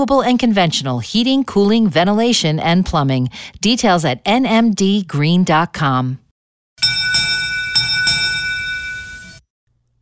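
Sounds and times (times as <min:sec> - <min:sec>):
speech: 0:00.0 - 0:06.2
bell ringing: 0:06.8 - 0:09.4.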